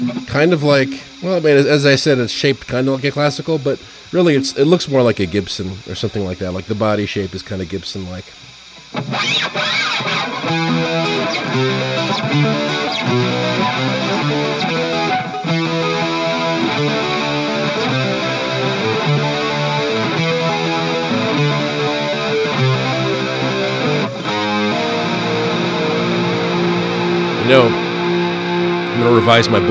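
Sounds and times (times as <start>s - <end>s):
heavily distorted electric guitar playing chords: 0.0s - 29.6s
speech: 0.1s - 14.7s, 27.5s - 27.8s, 29.0s - 29.6s.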